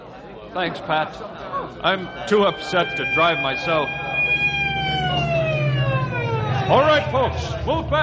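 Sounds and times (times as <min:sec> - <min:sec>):
speech: 0:00.5 - 0:04.2, 0:06.7 - 0:08.0
ambulance siren wailing: 0:01.8 - 0:07.6
low engine rumble: 0:01.8 - 0:08.0.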